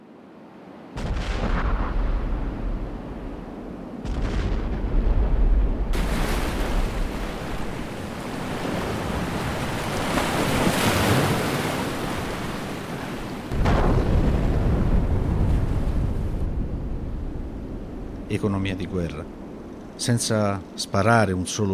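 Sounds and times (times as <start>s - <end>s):
heavy explosions blasting a ship's hull: 1.0s - 3.4s, 4.0s - 7.8s, 13.5s - 18.1s
heavy seawater flooding a sinking merchant ship in the Sea of Bothnia: 5.8s - 19.6s
speech: 18.4s - 21.7s.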